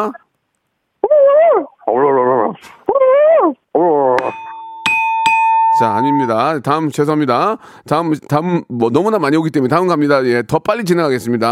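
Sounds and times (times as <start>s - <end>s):
speech: 0.0s - 0.2s, 1.3s - 4.4s, 5.8s - 11.4s
phone-in caller's voice imitating a dog whimpering and barking: 1.0s - 4.3s
bright bell-like dings: 4.2s - 6.6s.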